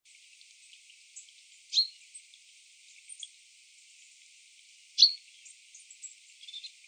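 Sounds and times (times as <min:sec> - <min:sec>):
common chaffinch Fringilla coelebs calling with crisp ringing notes: 0:01.7 - 0:02.0, 0:05.0 - 0:06.8.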